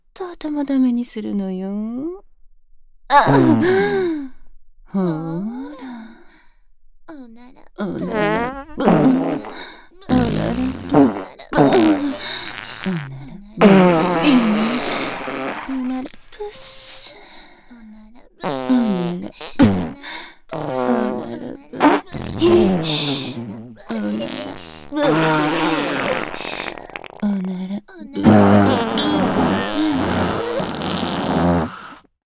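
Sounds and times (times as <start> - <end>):
speech: 0.2 - 2.3, 3.1 - 5.9, 7.3 - 9.7
loud rumbling farts: 8.0 - 16.3, 18.4 - 27.3, 28.2 - 32.1.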